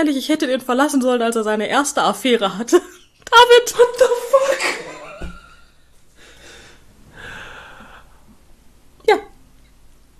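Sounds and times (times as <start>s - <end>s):
speech: 0.0s - 4.9s, 9.1s - 9.3s
breathing heard over a poor phone connection: 6.2s - 8.2s.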